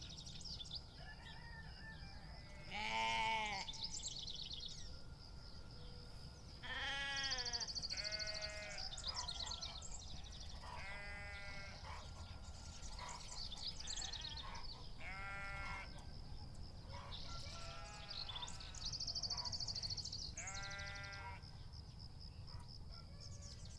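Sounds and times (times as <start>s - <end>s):
faint birdsong: 0.0s - 23.7s
sheep bleating: 2.5s - 3.7s, 6.6s - 8.9s, 10.8s - 11.8s, 15.0s - 15.9s, 17.6s - 18.2s, 20.4s - 21.4s.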